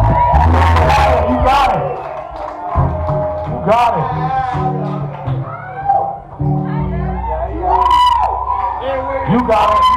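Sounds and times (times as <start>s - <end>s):
audience applause: 0.0s - 5.9s
large crowd cheering and shouting with whoops: 0.0s - 9.9s
speech: 3.7s - 5.0s.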